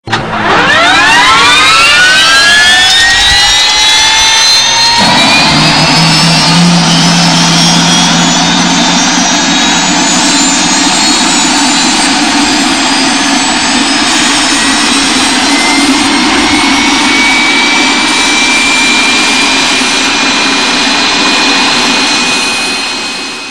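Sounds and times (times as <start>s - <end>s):
airplane starting: 0.0s - 23.4s.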